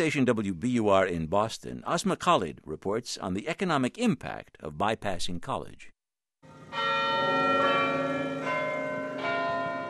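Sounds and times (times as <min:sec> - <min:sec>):
speech: 0:00.0 - 0:05.9
church bells in Harvard Square Boston chiming: 0:06.4 - 0:09.8.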